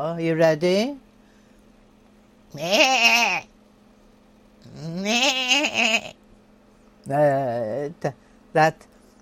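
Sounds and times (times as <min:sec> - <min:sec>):
speech: 0:00.0 - 0:01.0, 0:02.5 - 0:03.5, 0:04.6 - 0:06.2, 0:07.1 - 0:08.9
person imitating nasal goat bleats: 0:02.5 - 0:03.5, 0:04.6 - 0:06.2.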